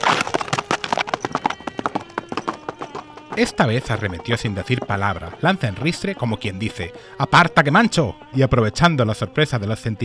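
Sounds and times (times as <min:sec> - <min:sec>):
ridden horse's hooves galloping on a hard street surface: 0:00.0 - 0:07.0
speech: 0:03.4 - 0:10.0.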